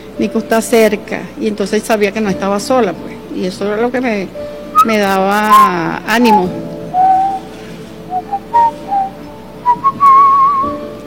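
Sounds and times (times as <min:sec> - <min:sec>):
speech: 0:00.2 - 0:06.7
person whistling a short song melody: 0:04.8 - 0:07.5, 0:08.1 - 0:10.8.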